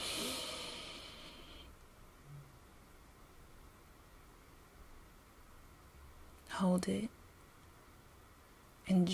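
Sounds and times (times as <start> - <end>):
deep breath drawn in during a guided breathing exercise: 0.0 - 1.8
speech: 6.6 - 7.2, 8.9 - 9.1.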